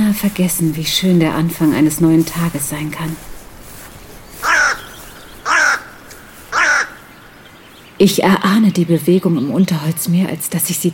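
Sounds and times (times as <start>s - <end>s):
faint hiss: 0.0s - 10.9s
speech: 0.2s - 3.3s, 8.0s - 10.9s
raven cawing on the branch of a fallen tree beside a path: 3.2s - 7.7s.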